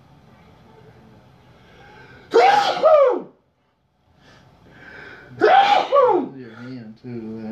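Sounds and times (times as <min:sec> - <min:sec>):
person sneezing: 0:02.3 - 0:03.2, 0:05.4 - 0:06.3.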